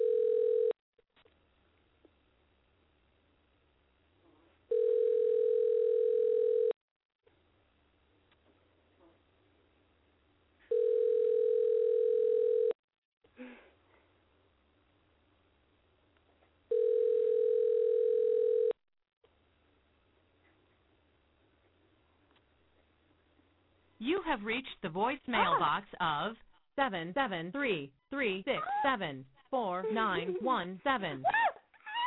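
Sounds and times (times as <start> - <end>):
steady mid-pitched telephone line tone during dialing: 0.0 - 0.8, 4.7 - 6.8, 10.7 - 12.8, 16.7 - 18.8
speech: 24.0 - 31.4.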